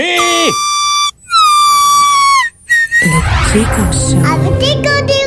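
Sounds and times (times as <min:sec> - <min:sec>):
device alarm beeping with shrill electronic tones: 0:00.0 - 0:02.0, 0:02.7 - 0:04.2
speech: 0:03.6 - 0:05.1.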